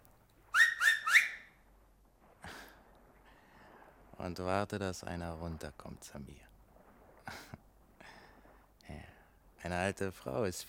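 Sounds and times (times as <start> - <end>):
sharp finger whistles: 0.5 - 1.5
speech: 4.2 - 6.5, 9.6 - 10.6.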